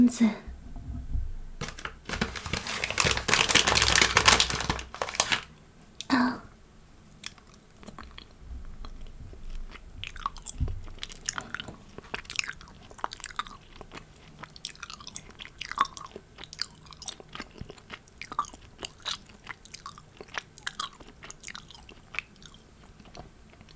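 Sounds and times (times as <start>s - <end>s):
speech: 0.1s - 0.5s
gummy candy wrapper crinkling: 1.6s - 5.6s
sticky wet chewing of gummy candy: 7.1s - 23.7s.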